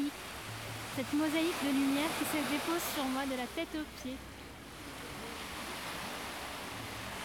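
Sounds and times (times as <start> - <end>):
ocean waves crashing on rocks: 0.0 - 7.2
speech: 1.0 - 4.3.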